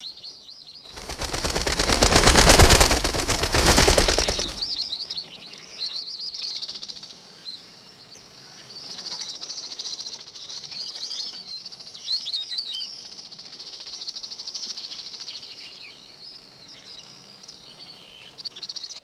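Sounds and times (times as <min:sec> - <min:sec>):
birds flapping wings: 0:01.0 - 0:04.8.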